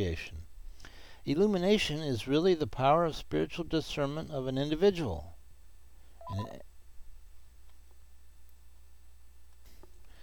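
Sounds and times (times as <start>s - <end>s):
speech: 0.0s - 0.4s, 1.2s - 5.3s, 6.3s - 6.7s
quiet steady hum: 0.0s - 10.2s
short electronic telephone chirp: 6.2s - 6.6s.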